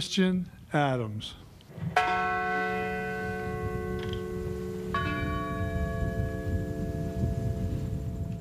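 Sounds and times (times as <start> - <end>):
speech: 0.0 - 2.3
large memorial bell tolling: 2.0 - 8.4.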